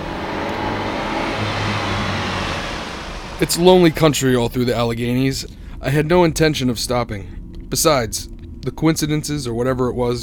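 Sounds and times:
car engine accelerating on a lonely road through the Alleghenies: 0.0s - 7.8s
speech: 3.4s - 10.2s.

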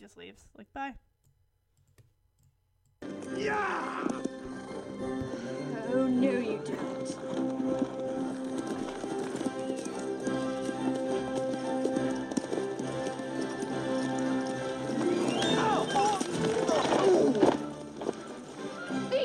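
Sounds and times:
speech: 0.0s - 1.1s, 3.3s - 4.2s
activity: 3.0s - 19.2s
horse hooves clip-clopping at a steady trot: 3.0s - 19.2s
whinny-like cry: 3.4s - 4.2s.

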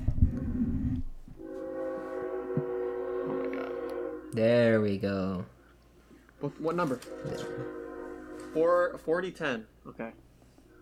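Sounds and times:
passing train rumbling: 0.0s - 4.4s, 6.4s - 9.1s
train horn multi-tone blast: 1.4s - 4.7s, 6.4s - 9.3s
speech: 4.4s - 5.6s, 6.4s - 7.8s, 8.5s - 10.2s.

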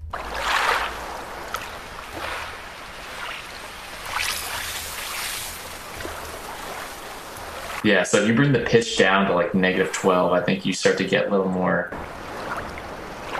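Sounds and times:
synthesized robotic ocean waves with reverb and ping-pong delay: 0.0s - 13.3s
speech: 7.8s - 12.2s.

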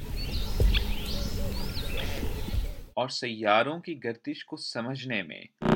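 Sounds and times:
birds chirping and whistling: 0.0s - 2.9s
speech: 3.0s - 5.6s.

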